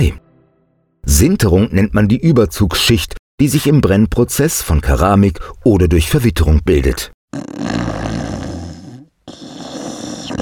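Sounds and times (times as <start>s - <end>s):
speech: 0.0s - 0.2s, 1.1s - 8.1s
loud rasping snoring: 7.3s - 10.3s.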